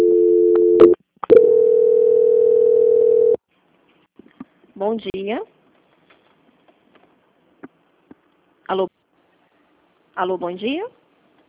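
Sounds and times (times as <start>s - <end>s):
telephone dial tone during a call transfer: 0.0s - 3.4s
speech: 4.8s - 5.6s, 8.7s - 9.0s, 10.2s - 11.0s.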